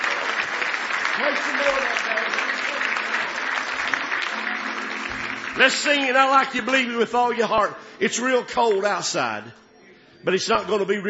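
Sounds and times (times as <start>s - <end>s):
audience clapping in praise: 0.0s - 7.6s
speech: 1.2s - 2.5s, 5.6s - 9.6s, 10.2s - 11.0s.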